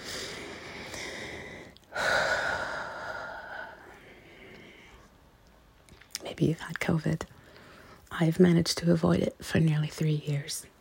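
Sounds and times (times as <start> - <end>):
deep slow breathing: 0.0 - 5.2
speech: 6.4 - 7.4, 8.2 - 10.7.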